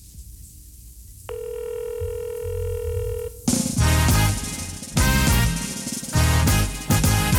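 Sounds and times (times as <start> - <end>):
telephone ringing tone over a phone line: 1.3 - 3.5
loud busy music: 3.5 - 7.3.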